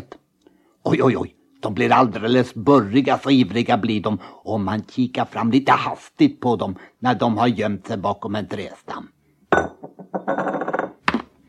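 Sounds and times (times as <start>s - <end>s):
speech: 0.9s - 9.2s
drinking glass clink: 9.5s - 10.9s
drinking glass sliding on a smooth table: 9.5s - 11.0s.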